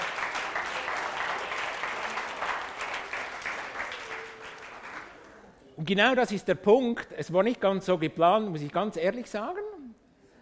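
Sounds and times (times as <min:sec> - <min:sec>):
audience applause: 0:00.0 - 0:05.4
speech: 0:05.8 - 0:09.7.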